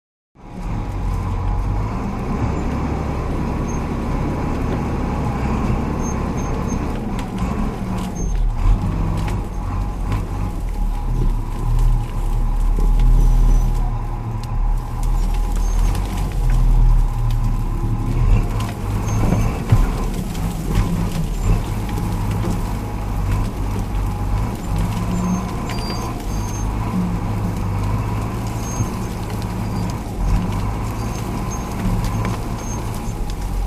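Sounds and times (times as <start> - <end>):
bulldozer starting and driving through brush: 0.4 - 33.6
bulldozer tires crushing vegetation: 0.4 - 33.6
bulldozer metallic squeaks: 3.6 - 4.0, 5.8 - 7.0, 8.0 - 9.6, 18.3 - 33.6.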